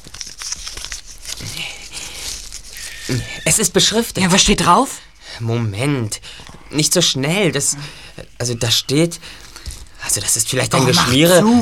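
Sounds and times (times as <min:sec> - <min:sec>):
small piece of paper from a pigeon leg band being unfolded, crinkling and rustling: 0:00.0 - 0:04.0
speech: 0:03.1 - 0:09.5, 0:10.1 - 0:11.6.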